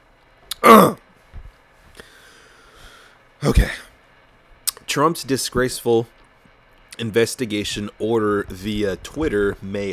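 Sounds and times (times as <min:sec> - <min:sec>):
sharp intake of breath: 0:02.0 - 0:03.9
harsh throat-clearing cough: 0:03.4 - 0:03.9
speech: 0:03.5 - 0:03.8, 0:05.0 - 0:06.2, 0:07.0 - 0:09.9.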